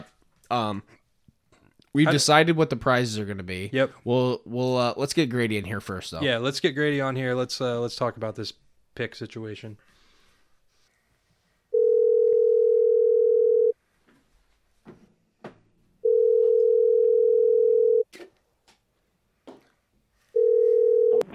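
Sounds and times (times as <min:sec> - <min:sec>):
speech: 0:00.5 - 0:01.0, 0:02.0 - 0:09.9
long steady electronic telephone ringback tones: 0:11.7 - 0:13.8, 0:16.0 - 0:18.0, 0:20.4 - 0:21.3.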